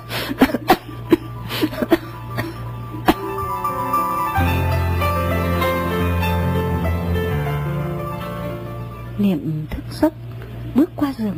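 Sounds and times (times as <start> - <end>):
steady sustained musical tone: 0.0 - 9.5
woman having a violent coughing fit: 0.2 - 3.2.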